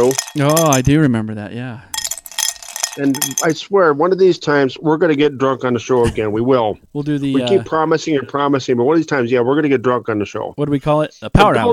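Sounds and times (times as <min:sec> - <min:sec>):
ice cubes clinking and rattling in a glass: 0:00.0 - 0:00.9, 0:02.0 - 0:03.6
speech: 0:00.0 - 0:01.9, 0:03.0 - 0:11.7.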